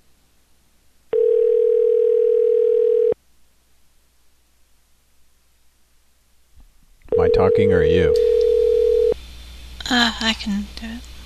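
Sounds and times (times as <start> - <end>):
telephone ringback tone as a call rings through: 1.1 - 3.2, 7.1 - 9.2
speech: 7.6 - 8.3, 9.9 - 11.1.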